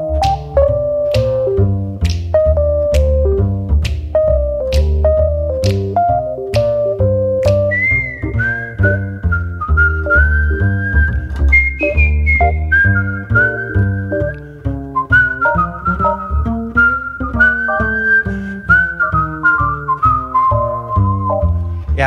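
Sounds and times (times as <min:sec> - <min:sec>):
full instrumental backing: 0:00.0 - 0:22.0
Italian whistler whistling a flowing melody: 0:06.5 - 0:21.9.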